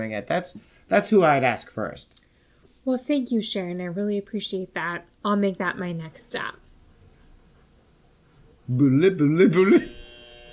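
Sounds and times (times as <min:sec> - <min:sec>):
speech: 0:00.0 - 0:02.2, 0:02.8 - 0:06.6, 0:08.7 - 0:10.1
faint noise: 0:00.0 - 0:09.9
voice imitating a wrong-answer buzzer: 0:09.4 - 0:10.5.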